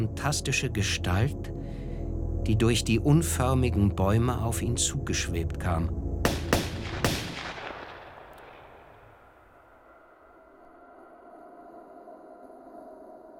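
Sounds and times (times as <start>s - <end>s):
speech: 0.2s - 1.8s, 2.4s - 6.0s
gunshots: 6.2s - 9.4s.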